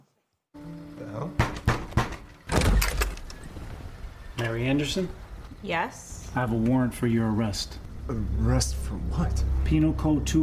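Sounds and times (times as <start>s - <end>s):
firm knocking on a door: 1.4s - 2.3s
speech: 4.4s - 10.4s.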